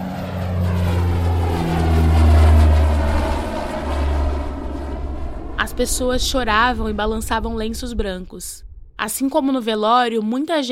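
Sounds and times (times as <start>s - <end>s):
propeller airplane taking off and departing from an airport: 0.0s - 9.1s
speech: 5.8s - 10.7s.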